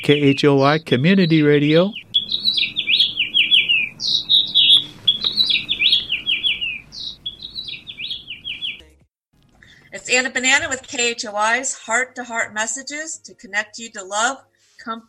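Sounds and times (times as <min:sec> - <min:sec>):
speech: 0:00.0 - 0:02.8, 0:10.1 - 0:15.0
house finches singing from a nest on an outside speaker: 0:00.0 - 0:08.9.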